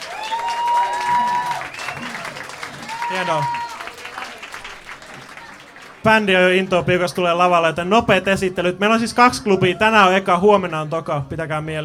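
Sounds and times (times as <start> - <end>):
crowd applause at a jazz festival club night: 0.0 - 7.0
speech: 3.1 - 3.6, 6.0 - 11.8.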